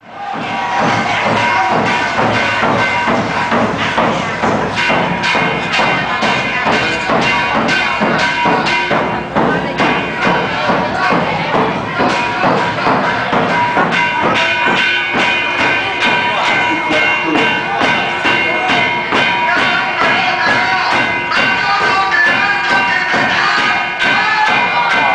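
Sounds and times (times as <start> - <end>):
temple ambience: 0.0 - 25.1.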